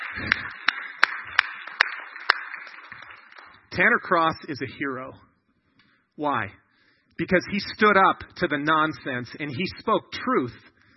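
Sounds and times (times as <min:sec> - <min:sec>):
slow rhythmic audience applause: 0:00.0 - 0:04.6
speech: 0:03.8 - 0:05.3, 0:06.2 - 0:06.6, 0:07.2 - 0:10.7.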